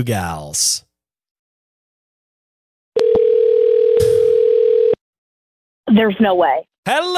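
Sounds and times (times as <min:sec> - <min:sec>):
speech: 0:00.0 - 0:00.8, 0:05.9 - 0:07.1
telephone dial tone for a call back: 0:03.0 - 0:05.0.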